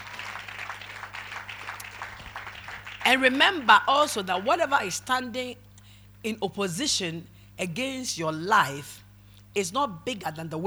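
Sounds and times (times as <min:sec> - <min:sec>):
audience clapping together: 0:00.0 - 0:04.9
low electrical hum: 0:00.0 - 0:10.6
speech: 0:03.1 - 0:05.6, 0:06.2 - 0:10.6.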